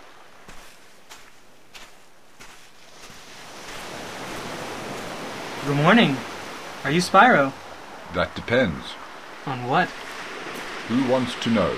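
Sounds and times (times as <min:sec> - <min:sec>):
footsteps on sand: 0:00.0 - 0:05.6, 0:09.9 - 0:10.8
ocean waves breaking on a beach: 0:00.0 - 0:11.7
speech: 0:05.6 - 0:10.1, 0:10.9 - 0:11.7.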